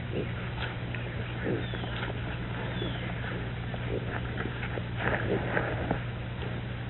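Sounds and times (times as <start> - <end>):
pig grunting and snuffling: 0.0 - 6.8
steady low hum: 0.0 - 6.8.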